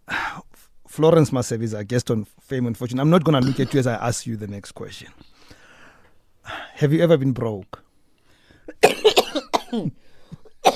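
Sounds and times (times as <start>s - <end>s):
speech: 1.0s - 5.3s, 6.5s - 7.8s, 9.7s - 10.7s
harsh explosive coughing: 3.4s - 3.9s, 8.7s - 10.7s.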